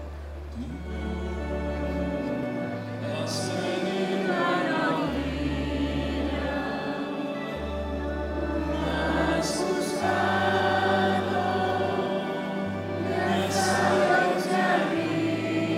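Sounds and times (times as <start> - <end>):
people singing a hymn at mass: 0.5 - 15.7.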